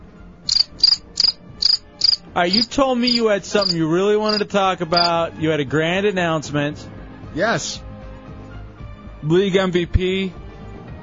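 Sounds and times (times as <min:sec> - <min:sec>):
crickets chirping in trilling bursts: 0:00.5 - 0:05.1
speech: 0:02.4 - 0:07.8, 0:09.2 - 0:10.4.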